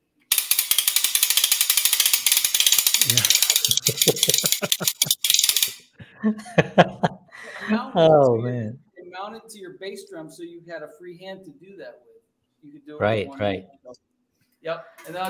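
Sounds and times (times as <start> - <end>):
cranked ratchet noisemaker percussion instrument clicking: 0.3 - 5.9
speech: 3.0 - 5.2, 6.2 - 7.0, 8.0 - 15.2
laughter: 3.0 - 5.3, 6.0 - 8.3.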